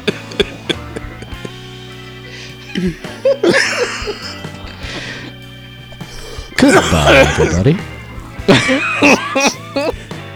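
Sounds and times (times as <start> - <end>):
person coughing harshly: 0.0 - 1.7, 2.4 - 5.3, 6.0 - 7.9, 8.5 - 10.2
laughter: 0.0 - 10.3
speech: 2.8 - 4.6, 6.6 - 7.9, 8.5 - 10.1.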